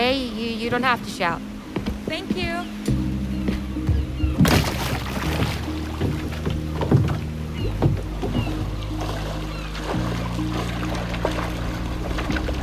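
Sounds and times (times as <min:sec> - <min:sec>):
speech: 0:00.7 - 0:03.6
kayak paddle strokes splashing through water: 0:04.3 - 0:12.6.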